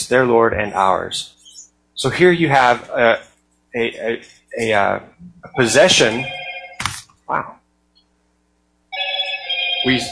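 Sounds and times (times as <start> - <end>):
speech: 0.1 - 1.4, 2.0 - 6.4, 7.3 - 7.6, 9.8 - 10.1
phone ringing with loud steady electronic ring: 5.5 - 6.9, 8.9 - 10.1.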